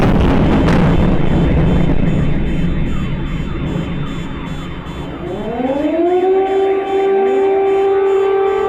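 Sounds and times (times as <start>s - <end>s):
loud rumbling burst of noise: 0.0s - 5.4s
air raid warning siren winding up and wailing: 0.0s - 8.6s.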